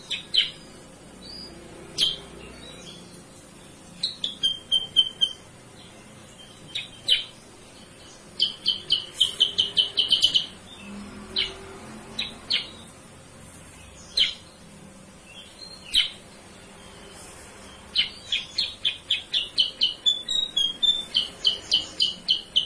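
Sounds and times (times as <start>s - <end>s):
Sooty-headed bulbul song used as lure song for cage birds: 0.0s - 22.6s.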